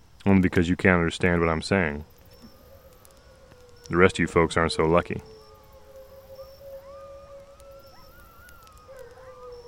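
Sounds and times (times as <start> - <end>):
steady outdoor hiss: 0.0 - 9.6
speech: 0.2 - 2.1, 3.9 - 5.4
pack of coyotes howling: 2.0 - 9.6.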